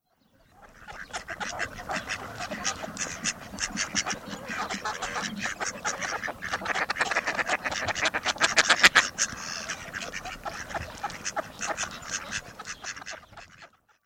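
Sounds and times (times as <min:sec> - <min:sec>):
male mallard Anas platyrhynchos: 0:00.1 - 0:14.0.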